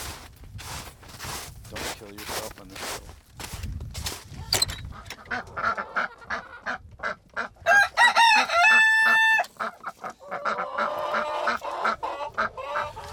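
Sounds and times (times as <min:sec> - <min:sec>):
speech: 0:02.0 - 0:03.1, 0:05.3 - 0:05.8
flock of chickens clucking while fed leftover scraps: 0:04.4 - 0:13.1
rooster crowing: 0:07.7 - 0:09.5.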